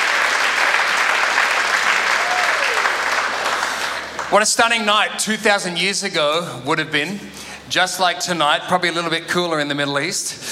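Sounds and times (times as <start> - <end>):
large audience applause: 0.0 - 4.4
faint whoop: 2.1 - 3.0
speech: 4.3 - 10.5.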